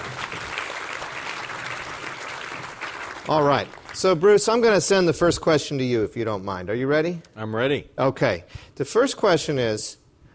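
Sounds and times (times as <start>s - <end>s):
audience applause at a panel discussion: 0.0s - 4.2s
speech: 3.3s - 10.0s.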